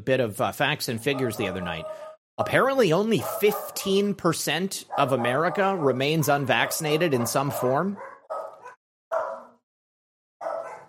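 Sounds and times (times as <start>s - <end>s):
speech: 0.0s - 8.1s
dogs barking at a pest control worker at the house: 1.0s - 2.2s, 3.1s - 4.1s, 4.9s - 9.6s, 10.4s - 10.8s.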